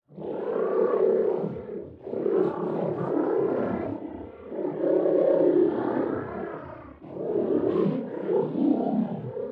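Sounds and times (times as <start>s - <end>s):
roar: 0.1s - 9.5s.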